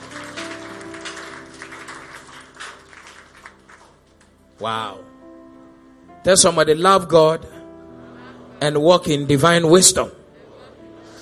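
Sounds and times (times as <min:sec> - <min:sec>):
audience clapping: 0:00.0 - 0:04.4
held keyboard chords: 0:00.0 - 0:11.2
speech: 0:04.6 - 0:05.2, 0:06.2 - 0:07.5, 0:08.6 - 0:10.2.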